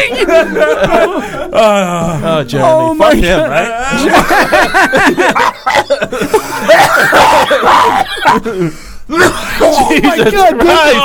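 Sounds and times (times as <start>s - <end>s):
speech: 0.0s - 7.6s, 8.3s - 11.0s
laughter: 0.0s - 11.0s
loud coughing fit with wheezing, hacking bursts and strained gasps: 6.2s - 8.6s, 9.2s - 10.2s.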